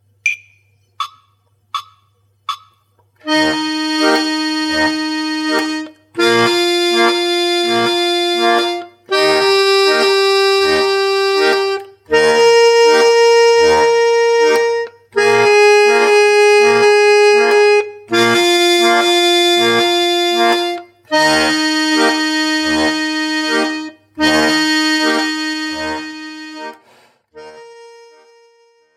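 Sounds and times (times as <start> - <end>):
melody with bass in even 4/4 time: 0.3 - 26.7.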